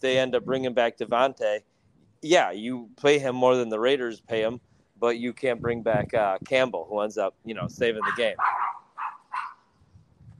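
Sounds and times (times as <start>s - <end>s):
speech: 0.0s - 8.8s
dog barking: 8.0s - 9.6s.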